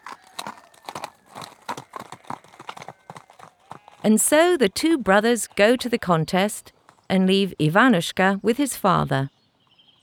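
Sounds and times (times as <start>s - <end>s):
horses' hooves clip-clopping: 0.0s - 7.6s
speech: 4.0s - 9.4s.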